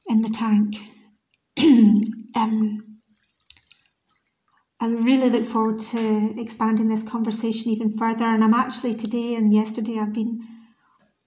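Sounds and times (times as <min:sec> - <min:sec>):
speech: 0:00.2 - 0:00.9, 0:01.6 - 0:02.9, 0:04.8 - 0:10.6
faint tiny drips: 0:00.8 - 0:04.8
water drops plopping into a bathtub: 0:01.6 - 0:04.6.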